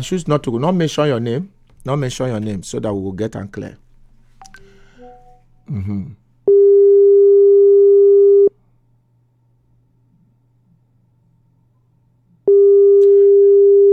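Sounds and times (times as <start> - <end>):
speech: 0.0 - 3.8, 5.7 - 6.2
faint low hum: 0.0 - 13.9
phone's electronic ringing tone: 6.5 - 8.5, 12.5 - 13.9.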